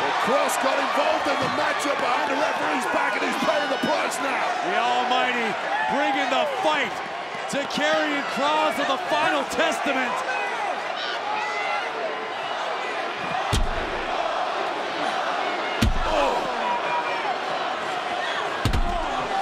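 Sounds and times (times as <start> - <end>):
arena crowd roaring: 0.0 - 19.3
speech: 0.2 - 10.3
heavy slams: 13.4 - 14.1, 15.8 - 16.4.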